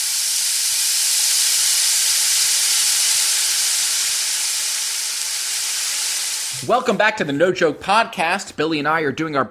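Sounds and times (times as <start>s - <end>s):
egg sizzling: 0.0s - 7.3s
speech: 6.6s - 9.5s.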